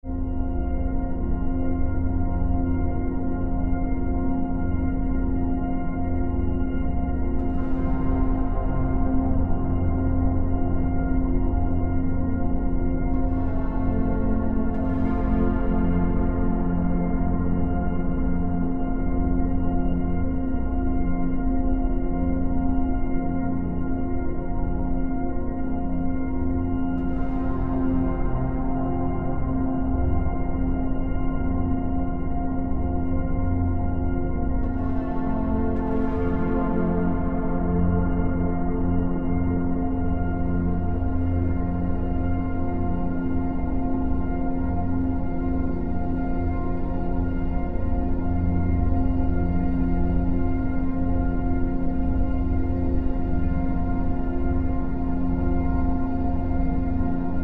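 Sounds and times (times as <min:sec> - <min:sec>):
mysterious ambient floating space chords: 0:00.1 - 0:57.4.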